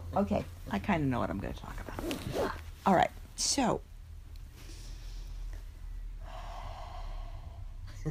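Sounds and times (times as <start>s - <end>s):
speech: 0.1s - 3.9s
heavy breathing into the microphone: 4.5s - 7.9s.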